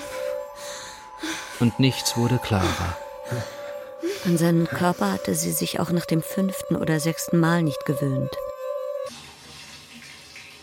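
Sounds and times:
speech: 0:01.6 - 0:03.6, 0:04.2 - 0:08.5
steady electronic tone: 0:01.6 - 0:09.1
shower water running: 0:09.1 - 0:10.6.

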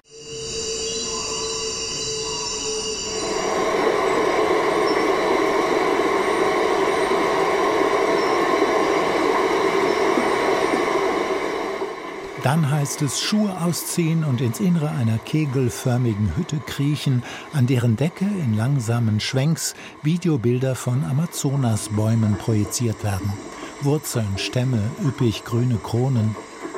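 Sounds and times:
hydrophone recording of underwater river ship traffic drone: 0:00.0 - 0:26.7
speech: 0:12.4 - 0:26.5.

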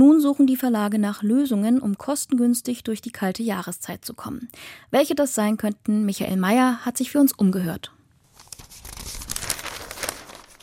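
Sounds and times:
speech: 0:00.0 - 0:08.0
daily newspaper pages rustling as they are turned: 0:08.3 - 0:10.6.

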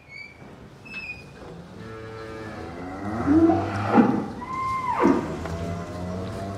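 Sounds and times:
cows lowing and mooing inside a barn: 0:01.5 - 0:06.5.

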